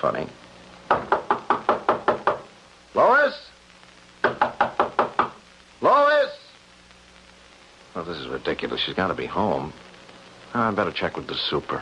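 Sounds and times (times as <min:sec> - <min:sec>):
speech: 0:00.0 - 0:01.1, 0:03.0 - 0:03.5, 0:08.0 - 0:09.9, 0:10.5 - 0:11.8
rapid knocking on an apartment door: 0:00.9 - 0:02.5, 0:04.2 - 0:05.4
man calling out to be let in: 0:05.8 - 0:06.5.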